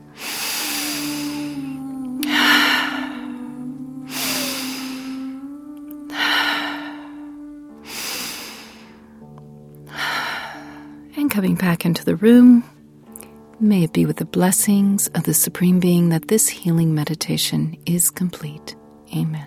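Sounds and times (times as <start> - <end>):
deep cleansing breaths at the close of a guided healing meditation: 0.0 - 5.4, 6.1 - 9.3, 9.9 - 11.1
steady sustained low tone: 0.0 - 17.2
speech: 11.4 - 12.7, 13.6 - 19.4.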